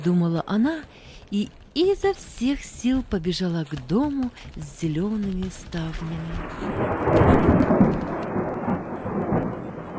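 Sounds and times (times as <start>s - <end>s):
speech: 0.0s - 8.0s
first raindrops of a storm falling on the ground: 0.7s - 9.9s
deep rolling thunder rumble: 6.2s - 9.9s.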